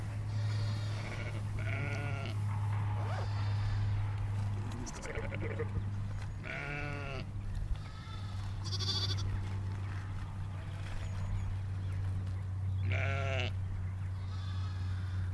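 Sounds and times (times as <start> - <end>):
steady low hum: 0.0 - 15.3
ewe and small lambs bleating: 0.2 - 2.4, 3.1 - 4.1, 4.8 - 5.8, 6.4 - 9.4, 12.8 - 15.3.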